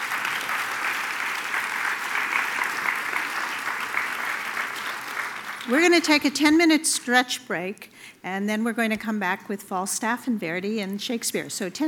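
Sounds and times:
audience applause: 0.0s - 6.0s
speech: 5.7s - 11.8s.

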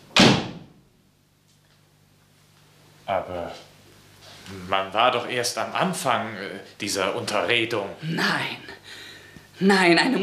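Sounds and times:
door slamming shut: 0.1s - 0.8s
speech: 3.1s - 3.7s, 4.5s - 9.0s, 9.6s - 10.2s.

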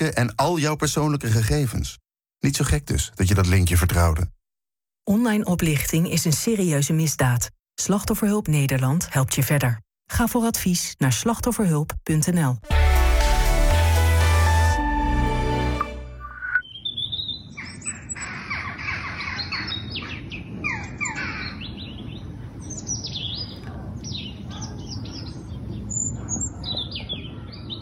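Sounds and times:
speech: 0.0s - 4.4s, 5.0s - 13.0s
sustained tones: 12.6s - 16.6s
robins and jackdaws calling: 16.4s - 27.7s.

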